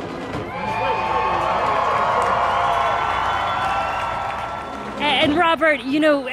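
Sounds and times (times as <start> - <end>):
crowd in the stands cheering and chanting: 0.4 - 5.6
shouts and whoops: 0.5 - 5.0
speech: 5.2 - 6.3.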